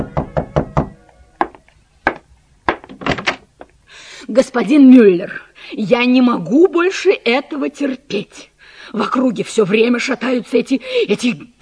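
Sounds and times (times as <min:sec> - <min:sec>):
knocking on a wooden door: 0:00.0 - 0:03.2
speech: 0:04.3 - 0:11.6.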